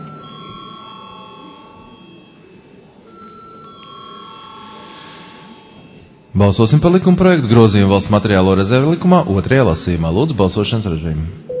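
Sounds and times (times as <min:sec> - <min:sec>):
bell ringing to call members to a parliamentary vote: 0:00.0 - 0:06.0
speech: 0:06.3 - 0:11.5.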